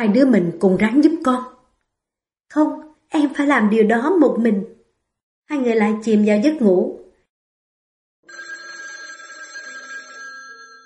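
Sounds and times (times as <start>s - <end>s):
speech: 0.0s - 1.6s, 2.5s - 4.8s, 5.5s - 7.0s
telephone with bright electronic ring: 8.2s - 10.8s.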